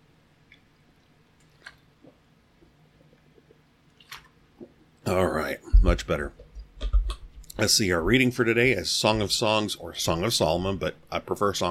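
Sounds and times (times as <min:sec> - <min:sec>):
person sipping water: 0:01.4 - 0:05.0
speech: 0:05.1 - 0:06.4, 0:07.6 - 0:11.6.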